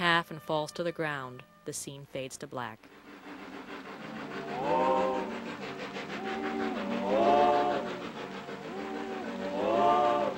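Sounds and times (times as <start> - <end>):
speech: 0.2 - 3.0
slow mournful droning tone swells: 2.8 - 10.3
steady wash of noise from a circus steam train in a heavy rainstorm: 2.9 - 10.3.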